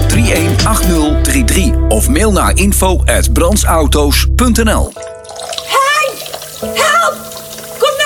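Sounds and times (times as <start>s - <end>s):
speech: 0.2s - 5.0s
water gushing and flooding a kitchen floor from a blocked drain: 4.8s - 8.0s.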